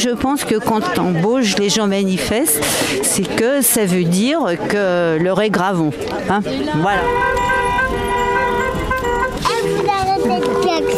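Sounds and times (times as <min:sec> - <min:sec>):
speech: 0:00.0 - 0:07.7
street traffic noise at a street protest: 0:00.0 - 0:10.9
car horn honking at a street protest: 0:06.8 - 0:10.9.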